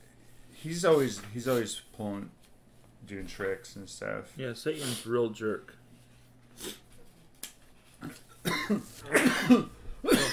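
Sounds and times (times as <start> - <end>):
speech: 0.6 - 2.4, 3.0 - 5.8, 6.6 - 6.8, 8.0 - 9.8
harsh coughing: 8.0 - 10.3.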